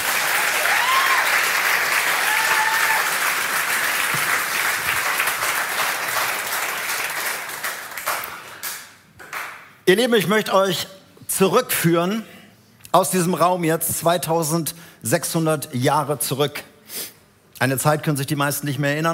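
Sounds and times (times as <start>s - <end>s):
church audience applause: 0.0s - 9.6s
speech: 9.9s - 19.1s.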